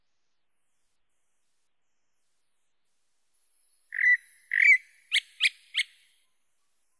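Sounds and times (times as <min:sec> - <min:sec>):
chalk-browed mockingbird song: 0:03.9 - 0:06.1.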